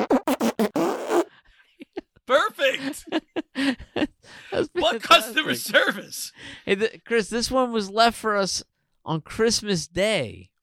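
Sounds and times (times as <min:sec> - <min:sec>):
short sputtering fart bursts: 0:00.0 - 0:01.3
speech: 0:02.3 - 0:03.8, 0:05.0 - 0:10.5.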